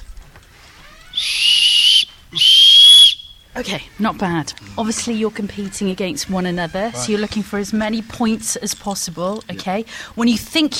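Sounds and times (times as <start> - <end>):
whistle blasts from a quiz answer prop whistle: 1.0 - 3.5
speech: 3.6 - 10.7.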